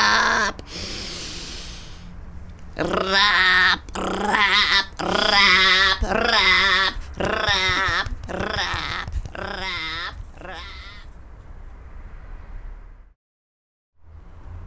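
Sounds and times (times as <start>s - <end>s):
speech: 2.8s - 7.7s
raven cawing: 2.8s - 11.1s.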